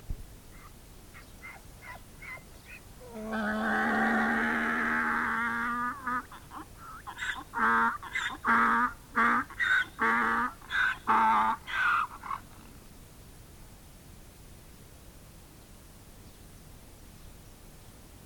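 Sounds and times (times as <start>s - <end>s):
donkey braying loudly: 0.6s - 12.7s.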